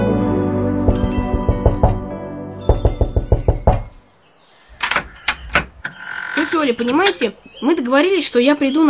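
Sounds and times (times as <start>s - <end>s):
soft music: 0.0s - 4.2s
firm knocking on a locked door: 0.9s - 2.1s, 2.7s - 4.0s
speech: 6.6s - 8.8s.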